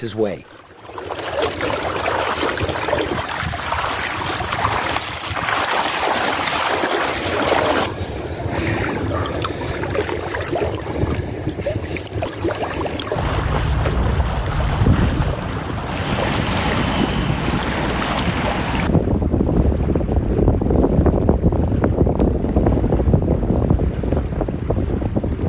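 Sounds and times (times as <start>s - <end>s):
speech: 0.0s - 0.6s
rushing water of the Rio Grande river: 0.0s - 18.9s
heavy wind buffeting the microphone: 2.5s - 25.4s.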